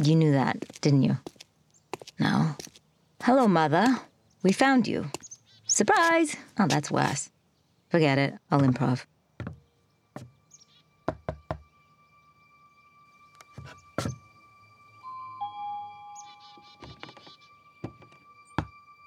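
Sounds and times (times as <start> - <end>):
speech: 0.0 - 1.3, 2.2 - 7.3, 7.9 - 9.6
sharp knocks on a door: 9.4 - 9.6, 11.1 - 11.6
faint electronic tones and chirps: 13.3 - 18.7.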